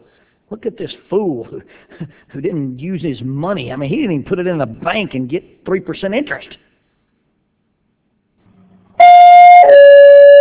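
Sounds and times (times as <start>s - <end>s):
speech: 0.5s - 6.6s
electronic doorbell ringing with two tones: 9.0s - 10.4s.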